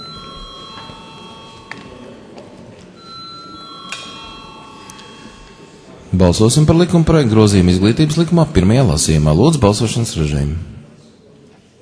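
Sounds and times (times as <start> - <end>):
bell ringing in a parliament chamber to call members to a vote: 0.0 - 2.4, 3.0 - 7.6
speech: 6.1 - 10.8.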